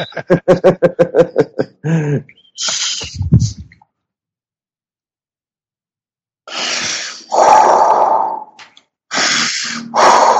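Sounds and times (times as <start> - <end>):
laughter: 0.0 - 2.0
speech: 0.0 - 2.7
deliberate forceful breathing with quick huffs: 1.8 - 3.6, 6.5 - 10.3.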